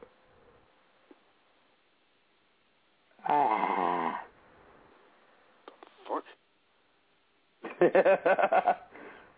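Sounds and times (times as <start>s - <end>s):
person yawning: 3.2s - 4.3s
speech: 7.9s - 8.7s.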